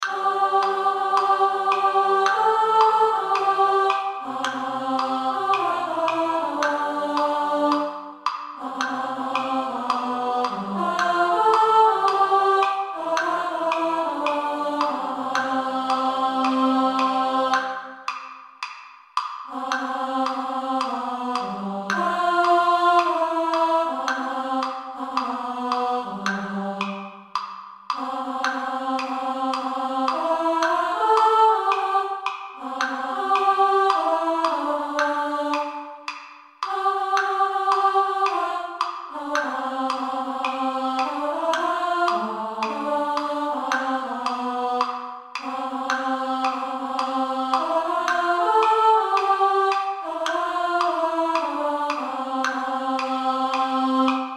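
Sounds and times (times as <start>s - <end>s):
women singing soprano: 0.0s - 18.2s, 19.5s - 54.3s.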